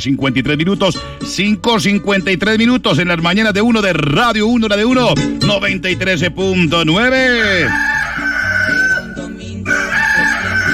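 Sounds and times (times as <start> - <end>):
speech: 0.0 - 7.9
steady musical backing: 0.0 - 10.7
rooster crowing: 7.6 - 10.7.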